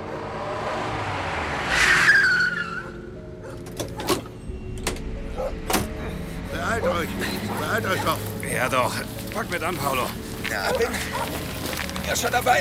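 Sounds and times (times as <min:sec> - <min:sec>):
car tire squeal: 0:00.0 - 0:03.2
car approaching: 0:00.0 - 0:12.4
speech: 0:06.9 - 0:12.5.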